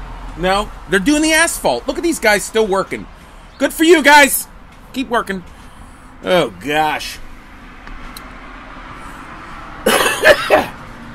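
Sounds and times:
speech: 0.4s - 5.5s, 6.2s - 7.2s
man coughing on a porch in cold weather from spring allergies: 9.8s - 10.8s.

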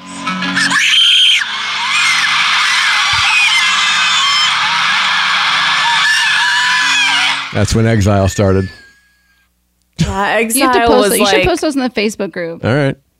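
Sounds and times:
girl screaming loudly and shrilly: 0.4s - 7.5s
speech: 7.6s - 8.8s, 10.2s - 13.0s.

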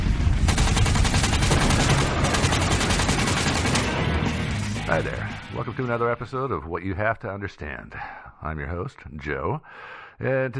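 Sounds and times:
explosion sound effects: 0.0s - 4.8s
gunfire sound effects: 0.3s - 4.5s
speech: 4.9s - 10.5s.

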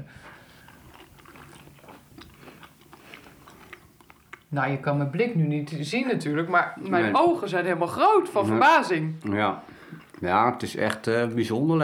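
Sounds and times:
crunchy biting and chewing of Brussels sprouts: 0.2s - 5.1s, 9.6s - 11.6s
speech: 4.5s - 11.8s.

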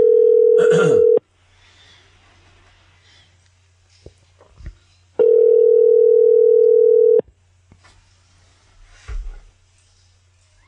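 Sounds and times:
telephone ringback tone of an outgoing call: 0.0s - 1.2s, 5.2s - 7.2s.

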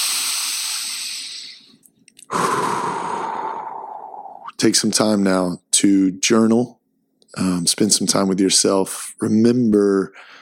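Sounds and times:
deep cleansing breath in and out: 0.0s - 1.7s, 2.3s - 4.5s, 10.2s - 10.4s
speech: 4.6s - 10.4s.

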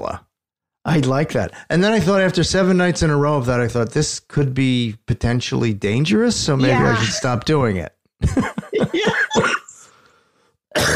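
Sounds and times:
speech: 0.0s - 0.3s, 0.9s - 9.6s, 10.8s - 10.9s
laughter: 6.6s - 7.6s, 8.2s - 9.8s
harsh coughs: 9.0s - 9.8s, 10.7s - 10.9s
breath: 9.8s - 10.6s.

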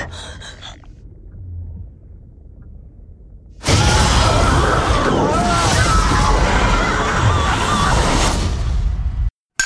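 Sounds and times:
underwater watery rumbling from a movie trailer: 0.0s - 8.9s
deep booming from a movie trailer: 1.0s - 7.4s.

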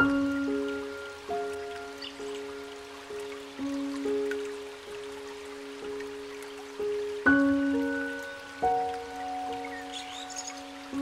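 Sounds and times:
gentle piano playing slow sustained notes and chords: 0.0s - 11.0s
soft steady rush of flowing water: 0.0s - 11.0s
faint bird chirps: 9.6s - 11.0s.

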